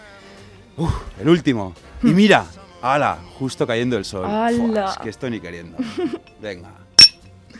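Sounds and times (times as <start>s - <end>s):
speech: 0.8s - 6.8s
people chatting and laughing: 1.8s - 2.6s, 4.2s - 6.6s
glasses clinking together in a toast: 7.0s - 7.3s.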